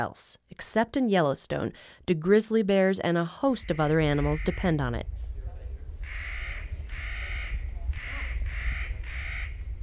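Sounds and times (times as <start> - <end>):
speech: 0.0 - 5.2
Clark's nutcracker giving harsh grating calls: 3.5 - 4.9, 6.0 - 9.6
constant low rumble: 3.6 - 9.8.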